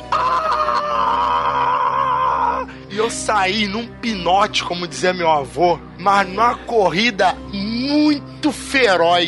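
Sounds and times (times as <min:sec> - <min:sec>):
loud sustained scream imitating a horror-film shriek: 0:00.0 - 0:02.7
speech: 0:03.1 - 0:09.2.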